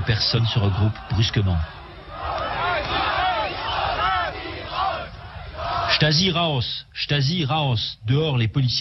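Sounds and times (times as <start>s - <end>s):
speech: 0.0s - 1.8s, 6.0s - 8.7s
protest crowd of several thousand people chanting a slogan outdoors: 0.0s - 6.4s.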